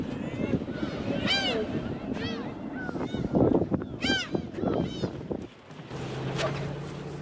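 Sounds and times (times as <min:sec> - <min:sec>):
fishing boat engine rumbling: 0:00.0 - 0:07.2
wind: 0:00.0 - 0:07.2
seagulls squawking over a fishing boat: 0:00.7 - 0:05.2.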